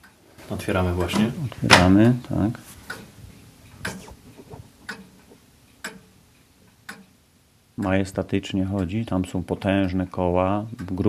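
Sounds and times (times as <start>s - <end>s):
large grandfather pendulum clock ticking: 0.0s - 11.0s
low room noise: 0.0s - 11.0s
speech: 0.5s - 2.8s, 7.8s - 11.0s.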